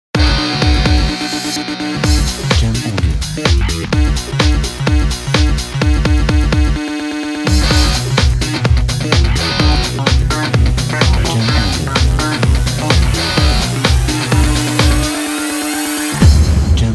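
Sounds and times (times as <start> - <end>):
energetic rock intro: 0.2 - 6.8, 7.4 - 16.8.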